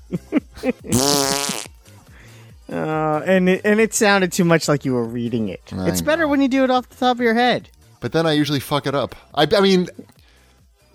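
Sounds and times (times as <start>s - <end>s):
person imitating fart noises with the voice: 0.8s - 1.8s
speech: 3.2s - 10.2s.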